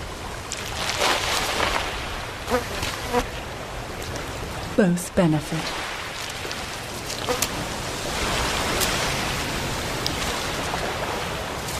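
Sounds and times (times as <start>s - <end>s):
outdoor noise: 0.0s - 11.7s
flies buzzing around sea lions on a shoreline: 2.5s - 3.3s, 7.2s - 7.6s
speech: 2.5s - 3.3s, 4.8s - 5.9s.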